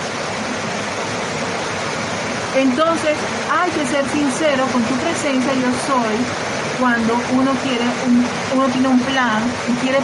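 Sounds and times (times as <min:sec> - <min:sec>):
heavy rain pouring down: 0:00.0 - 0:10.0
speech: 0:02.6 - 0:10.0.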